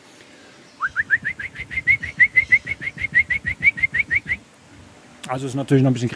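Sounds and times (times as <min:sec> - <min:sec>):
person imitating a black woodpecker's flight call: 0:00.8 - 0:04.4
speech: 0:05.3 - 0:06.1.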